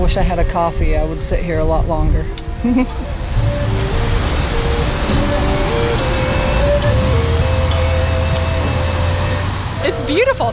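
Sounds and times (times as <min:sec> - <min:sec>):
flowing water along a walkway in Kansas: 0:00.0 - 0:10.5
soft melodic music from hidden speakers along a path: 0:00.0 - 0:10.5
speech: 0:00.1 - 0:03.2, 0:09.8 - 0:10.5.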